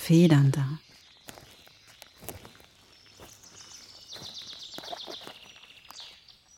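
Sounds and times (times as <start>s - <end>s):
footsteps crunching over small pebbles: 0.8s - 6.5s.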